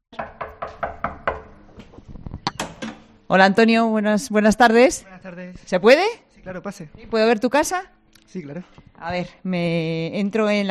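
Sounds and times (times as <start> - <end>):
firm knocks on an apartment door: 0.2 - 1.6
speech: 3.3 - 10.6.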